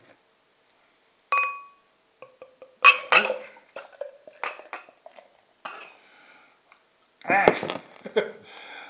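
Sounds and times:
glass clinking: 1.3s - 6.0s
beer pouring into a glass: 2.2s - 6.0s
speech: 7.3s - 8.4s.

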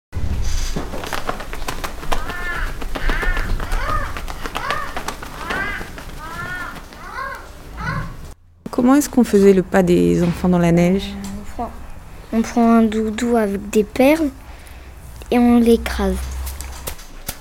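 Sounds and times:
gloves shaken to imitate birds' flapping wings: 0.2s - 8.3s, 13.6s - 17.3s
crow-like caws: 1.8s - 8.3s
speech: 8.8s - 14.4s, 15.3s - 16.3s.

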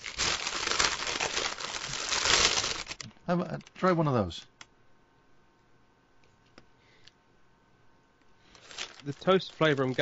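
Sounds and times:
paper bag crinkling as it's handled and opened: 0.0s - 3.1s, 8.5s - 10.0s
speech: 3.3s - 4.5s, 9.0s - 10.0s.

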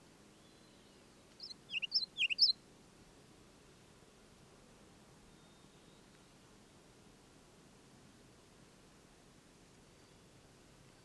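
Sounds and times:
faint low background hiss: 0.0s - 11.0s
ruby-crowned kinglet singing from a fir limb: 1.4s - 2.6s.

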